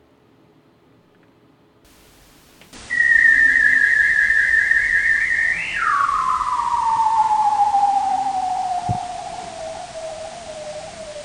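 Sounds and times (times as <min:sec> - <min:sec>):
bearded seal trill: 0:02.8 - 0:11.2.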